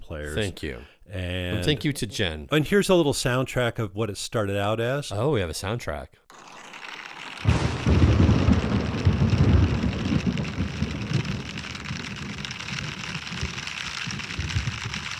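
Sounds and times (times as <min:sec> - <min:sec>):
speech: 0:00.1 - 0:06.6
heavy rain: 0:07.4 - 0:15.1
thunder rumbling: 0:07.5 - 0:15.1.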